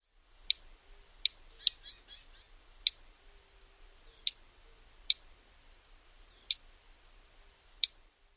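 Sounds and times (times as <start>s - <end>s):
Black-throated Gray Warbler calls: 0.0s - 5.4s, 6.2s - 6.7s, 7.8s - 8.0s.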